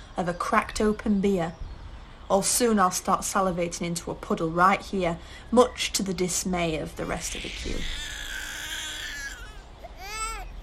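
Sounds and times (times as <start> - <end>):
noise: 0.0 - 10.6
speech: 0.2 - 1.6, 2.3 - 8.2
baby wailing beyond a way-out door near a queue: 7.0 - 10.6.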